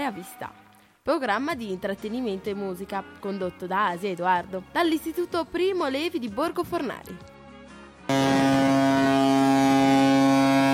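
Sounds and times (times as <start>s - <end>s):
speech: 0.0s - 7.3s
ship's horn blasting a deep steady tone: 8.1s - 10.7s.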